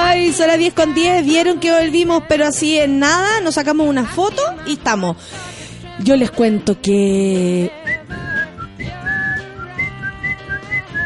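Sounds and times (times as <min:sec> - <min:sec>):
speech: 0:00.3 - 0:08.2
person whistling a short wavering melody: 0:07.8 - 0:11.0.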